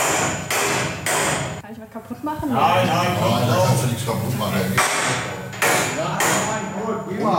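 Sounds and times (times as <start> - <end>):
hammer blows ringing at a mining-trades apprenticeship workshop: 0.0 - 1.6, 4.8 - 6.8
busy noise at a mining-trades apprenticeship workshop: 1.6 - 7.3
speech: 2.0 - 5.3.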